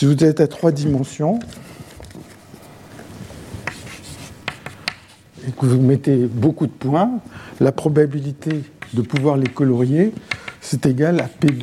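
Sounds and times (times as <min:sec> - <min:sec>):
speech: 0:00.0 - 0:01.7, 0:05.4 - 0:11.6
writing notes on a board during a lecture: 0:03.6 - 0:05.2, 0:08.4 - 0:11.6.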